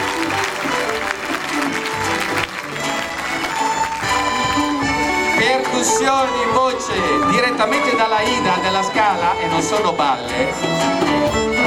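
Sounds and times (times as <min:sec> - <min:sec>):
audience applauding a first violinist: 0:00.0 - 0:05.2
faint voices and cheers in the crowd: 0:00.0 - 0:08.6
speech: 0:05.8 - 0:11.6.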